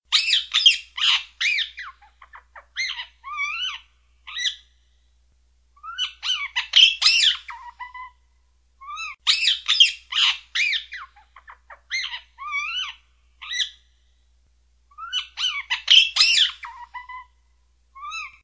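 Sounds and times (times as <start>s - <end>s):
ring-necked parakeet singing: 0.1s - 4.7s, 5.8s - 8.1s, 8.8s - 13.8s, 15.0s - 17.3s, 18.0s - 18.4s.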